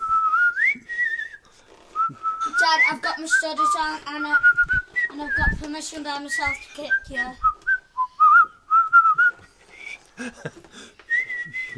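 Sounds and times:
dad whistling a silly tune to tease his kids: 0.0 - 1.4, 2.0 - 5.6, 6.4 - 10.1, 11.1 - 11.7
speech: 2.8 - 7.5, 10.2 - 10.9.

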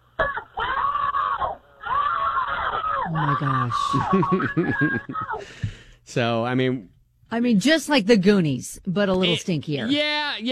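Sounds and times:
group of people screaming for help: 0.6 - 4.2
laughter: 3.1 - 5.4
speech: 3.1 - 10.4.

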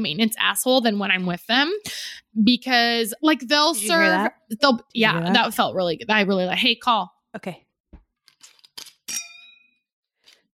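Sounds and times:
speech: 0.0 - 7.6
glasses clinking together in a toast: 9.1 - 9.7.

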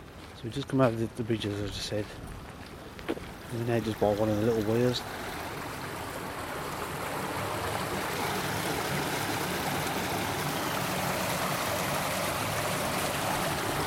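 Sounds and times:
speech: 0.4 - 2.4, 3.1 - 5.2
water running through a small canal lock channel: 3.3 - 13.8.

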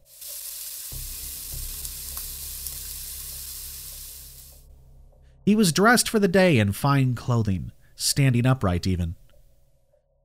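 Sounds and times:
crispy bacon frying in a pan: 0.0 - 4.6
speech: 5.5 - 9.2.

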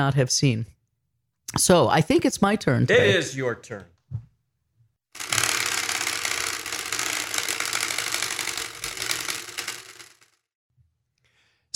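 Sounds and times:
speech: 0.0 - 0.8, 1.5 - 4.2
spinning prize wheel with a sprinkler-head pointer ticking: 5.2 - 10.4.

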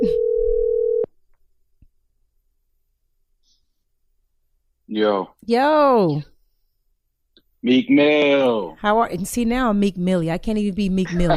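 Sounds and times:
steady electronic ringback tone from an outgoing phone call: 0.0 - 1.1
speech: 4.9 - 6.3, 7.6 - 11.3.

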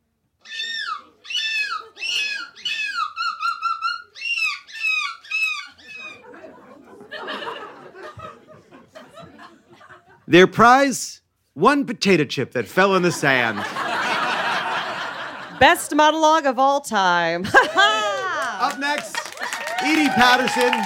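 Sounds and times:
person imitating seagull screeching in a seagull screeching contest: 0.4 - 6.2
laughter: 1.0 - 2.8, 5.8 - 10.3, 12.8 - 16.0, 17.4 - 20.8
speech: 10.3 - 13.8, 15.6 - 19.2, 19.8 - 20.8.

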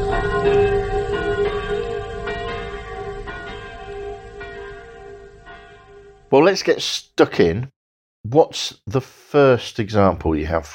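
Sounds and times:
church bells ringing in a village: 0.0 - 6.6
speech: 6.3 - 10.7.

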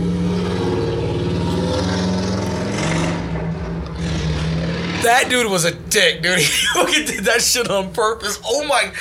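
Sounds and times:
motorcycle engine revving: 0.0 - 5.3
speech: 5.0 - 9.0
laughter: 6.3 - 7.8.

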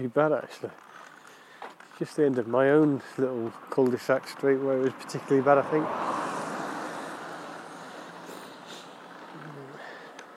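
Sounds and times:
speech: 0.0 - 0.9, 2.0 - 6.2
road traffic passing at night: 1.0 - 10.3
vehicle passing: 2.6 - 10.3.

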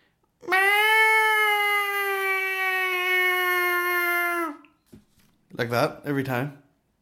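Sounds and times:
very loud drawn-out cat meow: 0.4 - 4.6
speech: 5.6 - 6.6.

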